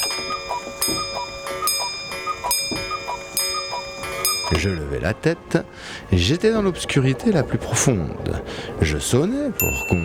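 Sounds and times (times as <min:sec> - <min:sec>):
pendulum clock chiming the hour: 0:00.0 - 0:04.9
speech: 0:04.5 - 0:10.0.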